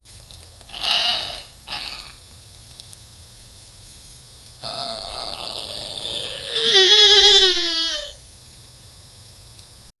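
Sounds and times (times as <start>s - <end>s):
crocodile hissing and growling: 0.7s - 2.2s, 4.6s - 8.2s.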